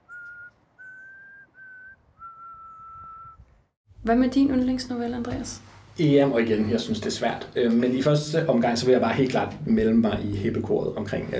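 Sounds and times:
person whistling sustained steady notes: 0.0s - 3.5s
speech: 4.0s - 11.3s.

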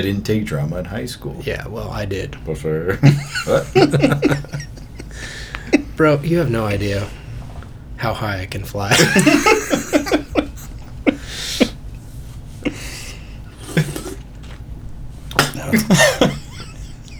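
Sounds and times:
speech: 0.0s - 4.6s, 6.0s - 7.2s, 8.0s - 9.6s, 15.9s - 16.4s
laughter: 2.6s - 7.2s, 8.7s - 14.2s, 15.3s - 17.1s
person coughing from something going down the wrong way: 3.1s - 6.0s, 8.9s - 11.8s, 12.7s - 14.3s, 15.3s - 17.1s
person gasping between coughs: 5.1s - 5.9s, 11.1s - 11.8s, 12.6s - 14.2s.

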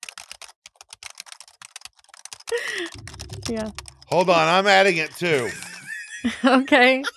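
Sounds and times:
rapid typing on a computer keyboard: 0.0s - 6.3s
speech: 2.5s - 7.1s
laughter: 2.6s - 2.9s, 4.1s - 7.1s.

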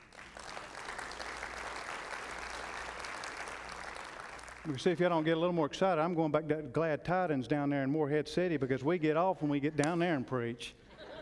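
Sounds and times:
church audience clapping: 0.0s - 5.5s
speech: 4.6s - 10.8s
laughter: 10.9s - 11.2s.

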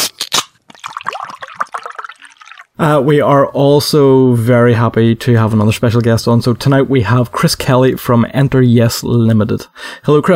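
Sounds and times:
drink being poured: 0.6s - 2.8s
speech: 2.8s - 10.3s.

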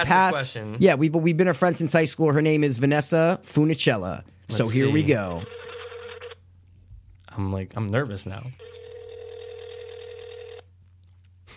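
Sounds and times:
speech: 0.0s - 5.6s, 7.4s - 8.7s
ringback tone from a phone call: 5.4s - 6.4s, 8.6s - 10.7s.

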